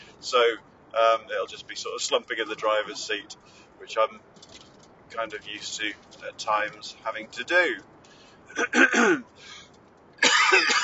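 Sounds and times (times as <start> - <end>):
speech: 0.2 - 4.5, 5.1 - 7.9, 8.5 - 9.6, 10.5 - 10.8
person clearing their throat in a fully loaded car: 8.6 - 9.3.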